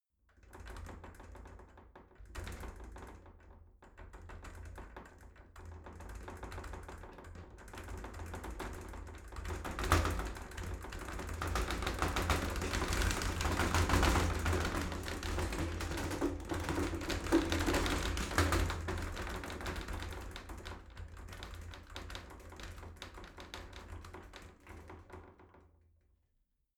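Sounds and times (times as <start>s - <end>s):
shower sliding door rattling: 9.6s - 20.6s.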